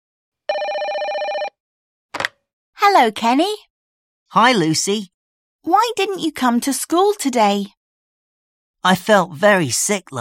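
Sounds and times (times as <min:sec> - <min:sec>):
telephone ringing with warbling bell tone: 0:00.5 - 0:01.6
speech: 0:02.8 - 0:03.7, 0:04.3 - 0:07.8, 0:08.8 - 0:10.1.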